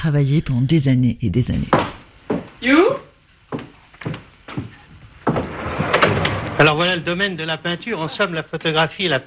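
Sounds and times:
speech: 0.0s - 1.9s, 2.6s - 2.9s, 6.6s - 9.2s
dull thumps of a sliding door being handled: 3.5s - 6.6s
sliding door in a house-studio rolling and scraping open: 5.3s - 7.0s.

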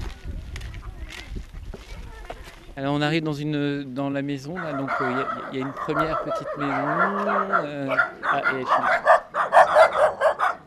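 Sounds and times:
speech: 2.8s - 9.0s
several dogs barking: 4.5s - 10.6s.

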